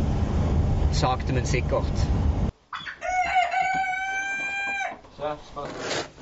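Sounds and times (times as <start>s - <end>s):
speech: 0.9s - 2.4s, 5.2s - 6.2s
rooster crowing: 2.7s - 5.0s.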